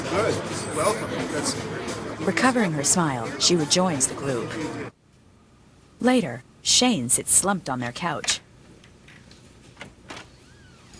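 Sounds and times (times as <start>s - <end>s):
speech: 0.1s - 5.0s, 6.0s - 8.4s
faint thin creak of a swinging door: 9.8s - 10.9s.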